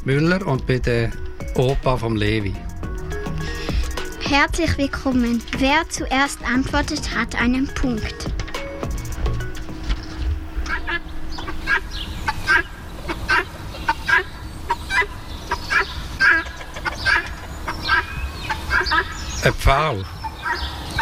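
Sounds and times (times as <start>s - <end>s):
speech: 0.0s - 2.7s, 4.3s - 8.9s, 19.4s - 20.2s
low rumbling background: 0.0s - 20.9s
guinea fowl calling: 9.7s - 19.5s, 20.1s - 20.9s.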